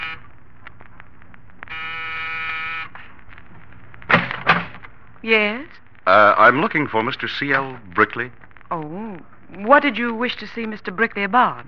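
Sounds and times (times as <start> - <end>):
apartment door buzzer in a building corridor: 0.0 - 0.2, 1.7 - 3.0
speech: 5.2 - 11.6.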